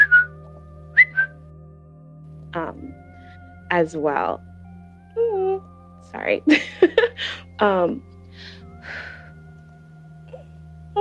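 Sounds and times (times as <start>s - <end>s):
involuntary whistle tics as high chirps: 0.0s - 0.3s, 0.9s - 1.4s
speech: 3.7s - 4.5s, 6.1s - 9.0s.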